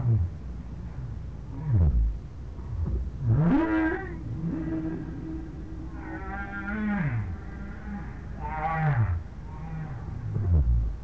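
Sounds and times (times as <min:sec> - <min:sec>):
steady low rumble: 0:00.0 - 0:11.0
whale moans with harmonic overtones: 0:03.4 - 0:11.0.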